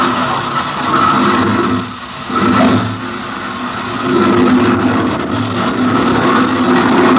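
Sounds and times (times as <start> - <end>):
propeller plane engine started by hand-spinning the propeller, roaring: 0.0 - 7.1.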